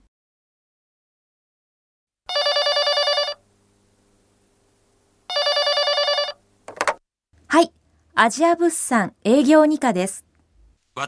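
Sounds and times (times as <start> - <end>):
telephone ringing with bright trilling rings: 2.3 - 3.4, 5.3 - 6.4
speech: 7.5 - 10.3.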